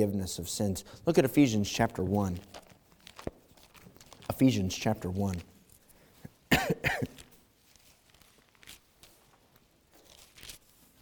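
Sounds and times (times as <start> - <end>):
speech: 0.0 - 2.6, 4.3 - 5.5
faint shuffling: 0.1 - 10.9
harsh coughs into the mic: 6.5 - 7.2.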